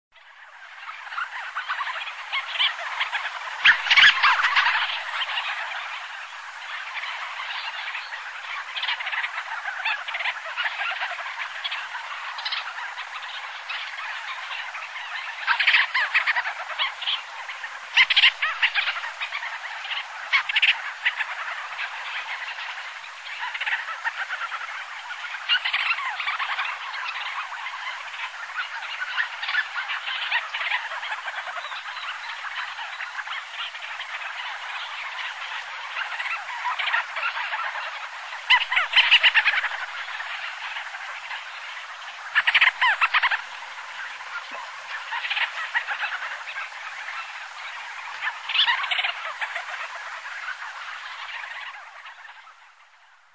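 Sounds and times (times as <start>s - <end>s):
Oceanodroma leucorhoa calling at sea off Sakhalin: 0.2s - 53.3s.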